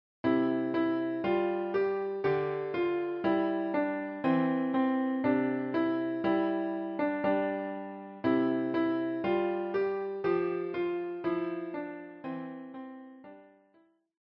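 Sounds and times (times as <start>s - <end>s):
piano piece: 0.2s - 13.8s.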